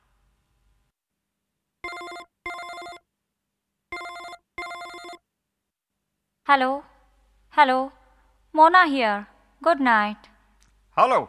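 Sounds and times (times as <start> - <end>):
telephone ringing: 1.8 - 3.0, 3.9 - 5.2
speech: 6.5 - 6.9, 7.6 - 10.3, 11.0 - 11.2.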